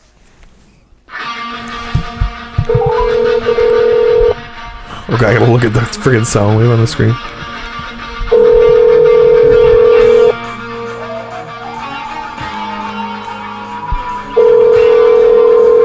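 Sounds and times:
ringback tone of an outgoing phone call: 2.7s - 4.4s, 8.3s - 10.4s, 14.3s - 15.8s
speech: 5.1s - 7.4s.

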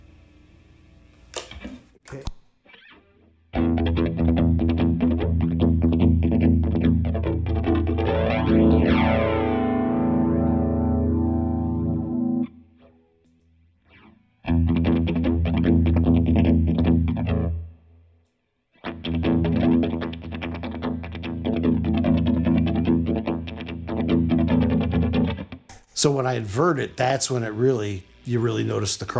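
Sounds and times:
speech: 2.1s - 2.4s, 26.0s - 29.1s
distorted electric guitar chords through a through-zero flanger effect: 2.8s - 13.2s, 13.8s - 18.1s, 18.8s - 25.7s.

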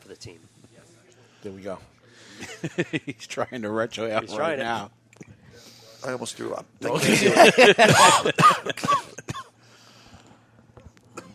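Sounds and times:
speech: 0.1s - 0.6s, 1.4s - 5.0s, 6.0s - 9.0s
laughter: 2.4s - 3.2s, 6.9s - 9.2s
harsh loud hacking coughing fit: 7.8s - 9.5s.

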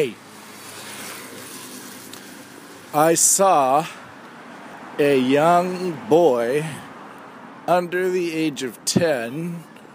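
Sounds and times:
speech: 0.0s - 0.2s, 2.9s - 4.0s, 5.0s - 6.9s, 7.7s - 9.7s
garbage trucks driving down the road: 0.0s - 7.6s.

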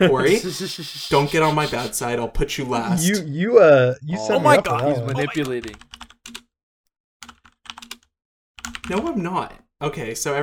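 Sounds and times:
speech: 0.0s - 6.0s, 8.9s - 10.4s
laughter: 3.9s - 5.6s
typing names on a computer keyboard: 5.4s - 6.5s, 7.2s - 9.1s.

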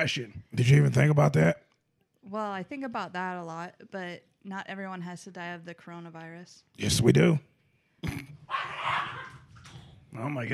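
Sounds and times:
speech: 0.0s - 1.6s, 2.2s - 8.2s, 10.2s - 10.5s
dog barking: 8.5s - 9.5s.

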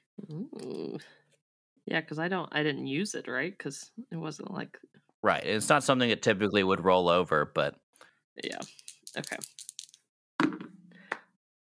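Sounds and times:
speech: 0.3s - 7.8s, 8.4s - 9.6s
dice rolling on a hard table: 8.4s - 10.7s.

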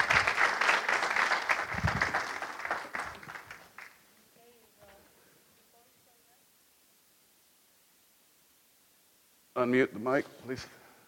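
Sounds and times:
audience applause and hand clapping: 0.0s - 4.0s
speech: 9.6s - 10.8s.

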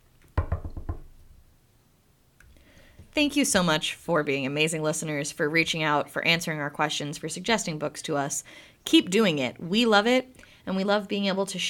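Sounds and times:
knocking on a wooden surface: 0.4s - 1.1s
speech: 3.2s - 11.6s.

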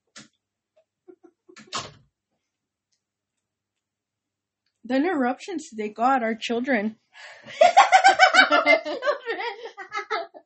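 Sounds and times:
door being pulled shut: 1.6s - 2.0s
speech: 4.9s - 7.9s, 8.5s - 9.7s
laughter: 7.5s - 10.4s.

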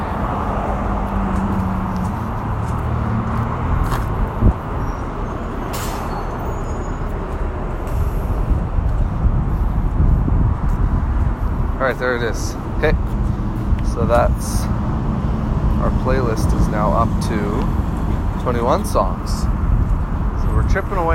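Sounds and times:
street traffic rumbling: 0.0s - 21.1s
vehicle engines droning: 0.0s - 21.1s
vehicles passing: 0.0s - 21.1s
speech: 12.0s - 13.0s, 15.8s - 17.8s, 18.4s - 19.5s, 20.7s - 21.1s.

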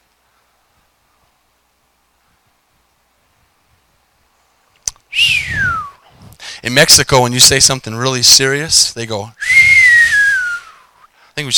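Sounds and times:
person whistling one loud breathy note: 5.1s - 6.0s, 9.4s - 10.9s
speech: 6.6s - 9.6s, 11.4s - 11.5s.

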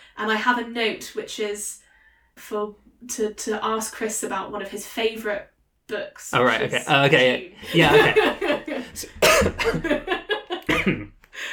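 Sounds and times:
speech: 0.2s - 1.8s, 2.4s - 11.5s
brief breaths: 1.8s - 2.4s, 11.2s - 11.5s
laughter: 7.6s - 11.1s
person coughing harshly: 9.1s - 9.9s, 10.7s - 11.2s.

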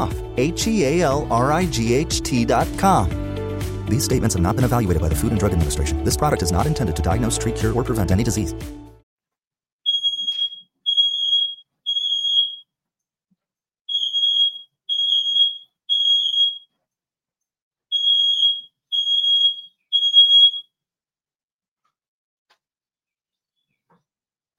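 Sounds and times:
speech: 0.0s - 3.2s, 3.9s - 8.8s
smoke alarm set off while the oven was on: 9.9s - 12.6s, 13.9s - 16.7s, 17.9s - 20.7s.

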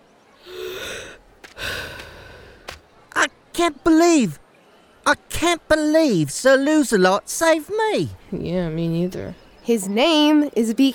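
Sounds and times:
deep breaths: 0.4s - 2.8s
speech: 3.6s - 4.4s, 5.1s - 10.9s.

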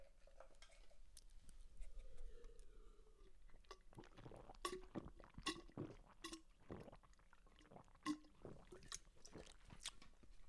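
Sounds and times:
water poured from a jug into a glass: 2.0s - 9.9s.

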